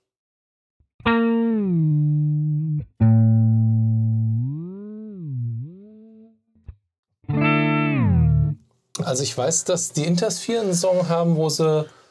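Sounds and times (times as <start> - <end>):
electric guitar played through an octave-down pitch shifter pedal: 1.0 - 8.6
speech: 9.1 - 12.0.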